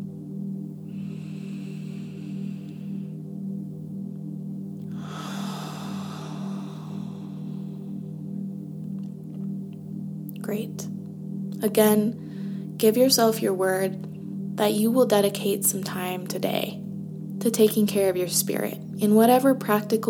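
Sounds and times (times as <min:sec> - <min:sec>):
steady low humming musical drone: 0:00.0 - 0:20.0
slow deep breath: 0:00.9 - 0:03.3, 0:04.9 - 0:08.4, 0:12.2 - 0:12.8
speech: 0:10.5 - 0:11.0, 0:11.6 - 0:12.2, 0:12.8 - 0:16.8, 0:17.4 - 0:20.0.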